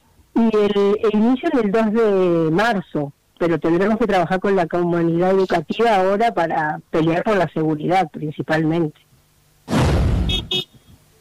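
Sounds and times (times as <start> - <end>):
speech: 0.4 - 9.0
car horn tooting as a greeting: 10.3 - 10.8.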